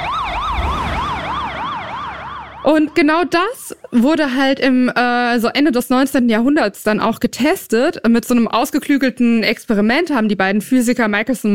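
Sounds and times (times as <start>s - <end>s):
low traffic rumble: 0.0s - 3.8s
passing emergency siren with Doppler shift: 0.0s - 4.6s
speech: 2.6s - 11.5s.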